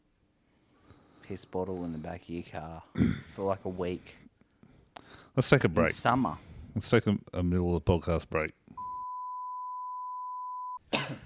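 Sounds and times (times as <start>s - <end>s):
speech: 1.3s - 4.2s, 5.4s - 8.6s
short breathy cough: 2.9s - 3.4s, 10.9s - 11.2s
long high beep tone: 8.8s - 10.8s.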